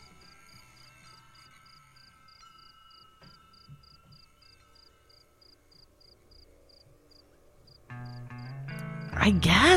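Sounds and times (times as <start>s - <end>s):
crickets chirping in a steady rhythm: 0.0s - 9.2s
soft musical bed: 0.0s - 9.7s
speech: 9.2s - 9.7s.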